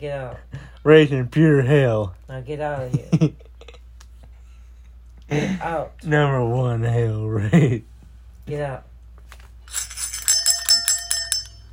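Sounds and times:
speech: 0.0s - 3.4s, 5.3s - 7.9s, 8.5s - 8.9s
small bell ringing: 9.7s - 11.7s.

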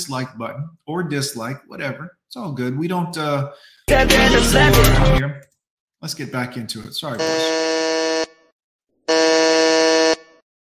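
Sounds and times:
speech: 0.0s - 7.7s
harsh electronic buzzer blasts used to reset a song: 7.2s - 8.5s, 9.1s - 10.4s.

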